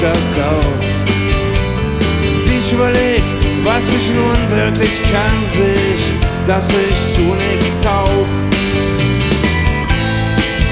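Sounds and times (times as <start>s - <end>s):
busy musical backing with steady tones: 0.0s - 10.7s
speech: 2.8s - 9.0s
bicycle bell ringing: 9.4s - 10.7s.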